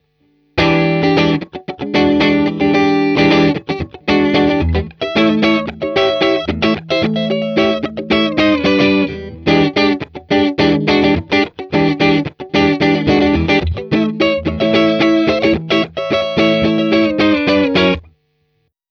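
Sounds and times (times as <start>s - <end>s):
70th funky music: 0.6s - 18.1s.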